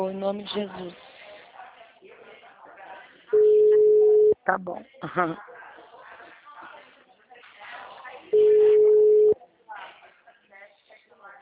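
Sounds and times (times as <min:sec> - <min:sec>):
speech: 0:00.0 - 0:01.0, 0:04.5 - 0:05.5
telephone tone after a dropped call: 0:03.3 - 0:04.4, 0:08.4 - 0:09.4.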